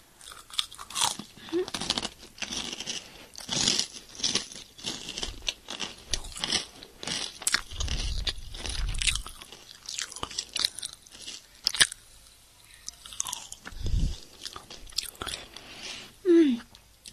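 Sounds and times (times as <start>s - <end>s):
biting and chewing food: 0.2s - 12.1s, 12.8s - 16.0s
soft breathy noises: 3.0s - 3.4s, 15.4s - 16.2s.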